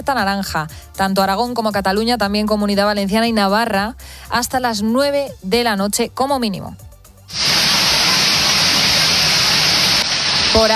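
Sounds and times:
speech: 0.0 - 7.5, 10.6 - 10.7
heavy rain pouring down: 7.3 - 10.7.

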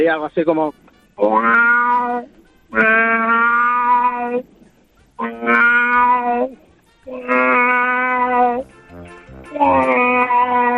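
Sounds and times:
speech: 0.0 - 3.3
person imitating a cat in heat yowling: 1.3 - 4.4, 5.2 - 8.6, 9.5 - 10.7.

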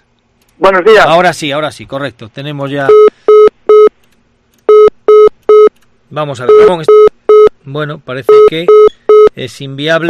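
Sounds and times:
speech: 0.6 - 3.1, 6.1 - 7.0, 7.7 - 10.0
telephone line tones during an attempt to place a call: 2.9 - 3.9, 4.7 - 5.7, 6.5 - 7.5, 8.3 - 9.4.

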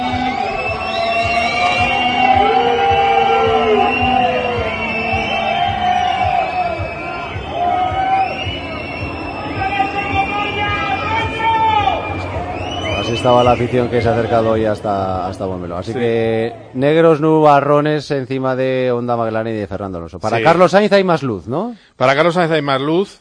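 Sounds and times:
large crowd booing: 0.0 - 16.8
speech: 13.2 - 23.1.

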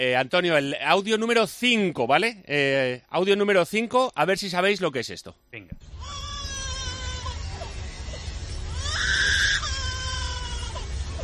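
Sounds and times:
speech: 0.0 - 6.2
low rumble: 5.8 - 11.2
lyrebird mimicking a crying baby: 6.0 - 11.2.

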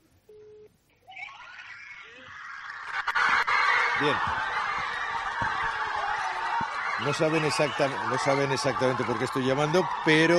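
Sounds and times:
brief steady electronic beep: 1.0 - 3.2
crowd of people shrieking with high-pitched screams: 1.2 - 10.3
speech: 4.0 - 4.5, 7.0 - 10.3.

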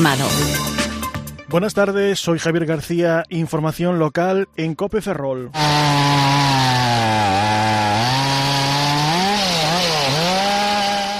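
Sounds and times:
speech: 0.0 - 0.7, 1.5 - 6.6
chainsaw cutting trees: 5.6 - 11.1.

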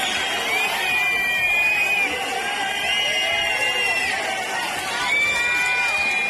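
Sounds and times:
shrill piercing whistles: 0.0 - 4.3, 5.0 - 6.2
large outdoor crowd booing: 0.0 - 6.2.

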